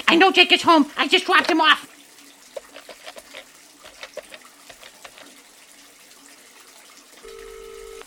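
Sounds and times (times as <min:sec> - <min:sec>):
water running from a bathtub tap that won't shut off: 0:00.0 - 0:08.0
speech: 0:00.1 - 0:01.9
telephone dial tone: 0:07.2 - 0:08.0.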